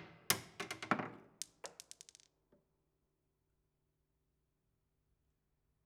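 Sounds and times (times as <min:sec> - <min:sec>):
marble lazily bouncing: 0:00.4 - 0:02.4.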